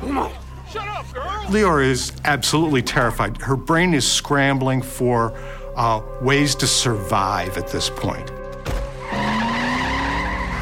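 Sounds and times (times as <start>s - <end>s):
speech: 0.2s - 8.4s
car tires squealing: 8.8s - 10.5s
car engine revving: 8.9s - 10.5s.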